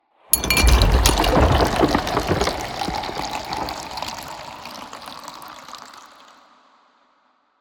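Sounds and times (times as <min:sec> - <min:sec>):
liquid pouring: 0:00.4 - 0:06.4.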